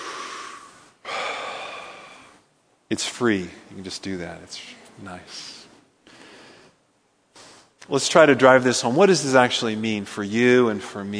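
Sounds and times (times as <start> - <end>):
congregation breathing together in unison: 0.0 - 2.5, 6.0 - 7.8
speech: 2.9 - 5.6, 7.9 - 11.1.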